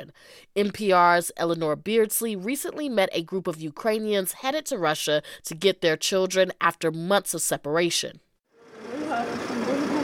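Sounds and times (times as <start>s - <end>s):
speech: 0.0s - 8.3s
bus engine idling in Kyiv: 8.6s - 10.0s.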